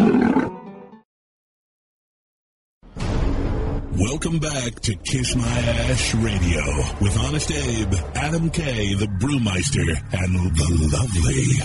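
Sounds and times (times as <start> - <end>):
big cat roaring: 0.0 - 0.6
speech: 4.0 - 11.6.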